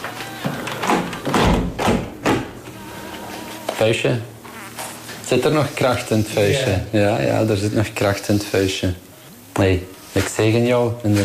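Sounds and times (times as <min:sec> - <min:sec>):
window being shut with dull knocks and sliding thuds: 0:00.8 - 0:02.6
speech: 0:03.8 - 0:04.3, 0:05.3 - 0:11.2.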